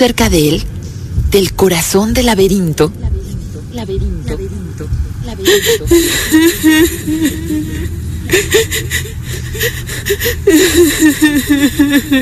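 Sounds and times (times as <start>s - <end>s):
speech: 0.0s - 0.7s, 1.3s - 12.2s
low steady rumble: 0.0s - 12.2s
woman sobbing with shaky gasping breaths: 5.3s - 12.2s.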